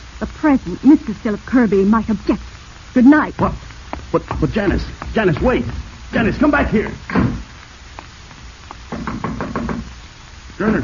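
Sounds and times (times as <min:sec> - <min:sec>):
speech: 0:00.2 - 0:07.4, 0:10.6 - 0:10.8
taps and knocks on a door: 0:03.4 - 0:05.9, 0:06.6 - 0:07.5, 0:08.9 - 0:09.9.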